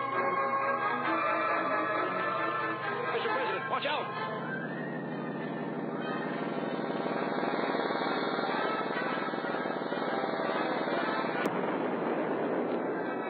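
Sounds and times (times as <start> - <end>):
electrical buzzing drone of laser devices firing as circuits overload: 0.0 - 13.2
sharp crack: 6.5 - 13.2.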